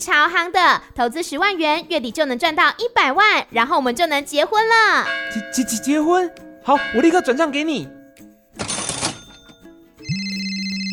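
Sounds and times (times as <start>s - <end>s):
speech: 0.0s - 8.0s
phone ringing with a steady electronic tone: 8.6s - 10.9s.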